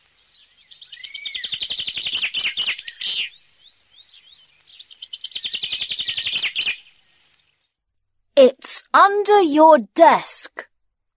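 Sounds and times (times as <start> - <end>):
bird chirping: 0.1 - 7.7
speech: 9.0 - 10.6.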